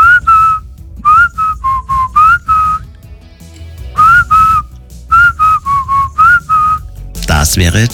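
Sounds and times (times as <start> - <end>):
whistled pop melody: 0.0 - 3.0, 3.9 - 7.1
faint low backing music: 0.0 - 7.9
speech: 7.6 - 7.9.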